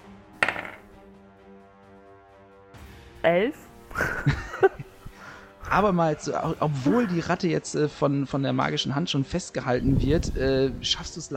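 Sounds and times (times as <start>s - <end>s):
twenty-sided die rolling on a hard table: 0.4s - 0.9s
speech: 3.2s - 4.8s, 5.7s - 11.3s
laughter: 3.9s - 5.1s, 6.8s - 7.4s.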